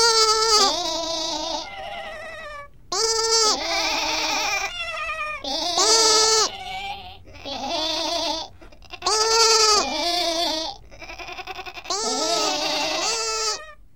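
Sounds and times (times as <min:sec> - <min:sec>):
adult sheep and lambs bleating: 0:00.0 - 0:13.8.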